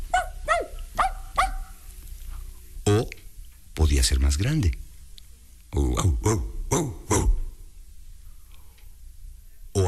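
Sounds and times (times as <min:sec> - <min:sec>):
small dog barking: 0:00.0 - 0:01.8
speech: 0:03.8 - 0:04.8, 0:05.7 - 0:06.9.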